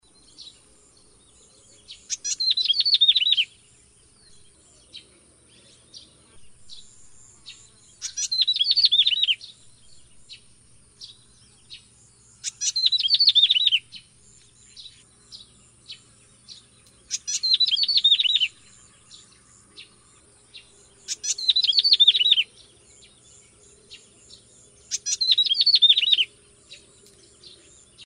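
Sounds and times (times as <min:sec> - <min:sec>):
resident Cisticolidae bird calling: 0:01.7 - 0:03.6, 0:06.7 - 0:09.6, 0:11.0 - 0:20.0, 0:20.6 - 0:28.0.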